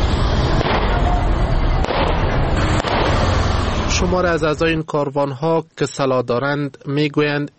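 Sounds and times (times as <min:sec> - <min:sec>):
outdoor crowd noise with indistinct voices: 0:00.0 - 0:07.5
gunshots fired into the air: 0:00.5 - 0:01.1, 0:01.8 - 0:03.4
speech: 0:04.0 - 0:07.5.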